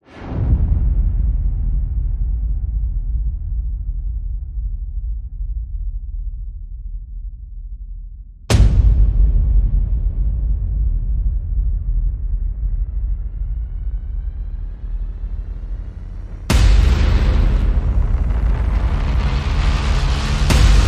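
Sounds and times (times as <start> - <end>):
percussion: 0.1 - 20.8
sound effects: 13.7 - 20.8.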